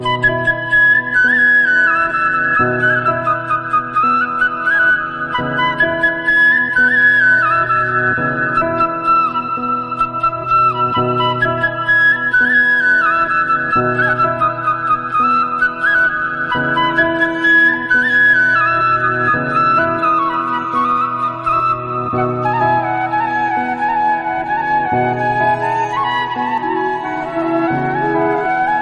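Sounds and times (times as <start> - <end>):
Malayalam flute background music: 0.0 - 28.8.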